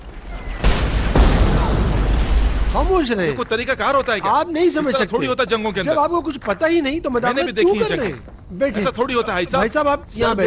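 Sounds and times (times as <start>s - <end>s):
loud gunshots: 0.0s - 3.2s
noisy background: 0.0s - 10.4s
speech: 2.8s - 10.4s.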